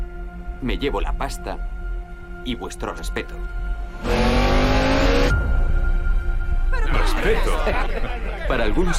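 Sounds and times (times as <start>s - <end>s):
speech: 0.6s - 1.8s, 2.4s - 4.3s, 7.2s - 8.9s
car engine revving and pulling away at a green light: 4.0s - 5.5s
laughter: 6.7s - 8.9s.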